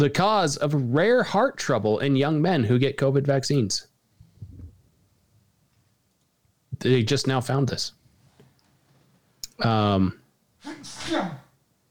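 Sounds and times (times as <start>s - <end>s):
speech: 0.0s - 3.9s, 6.8s - 8.0s, 9.6s - 11.4s
person sneezing: 10.6s - 11.5s.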